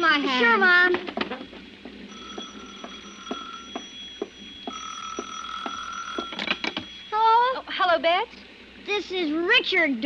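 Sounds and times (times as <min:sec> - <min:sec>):
speech: 0:00.2 - 0:01.0, 0:08.0 - 0:10.0
telephone bell ringing: 0:02.1 - 0:07.3.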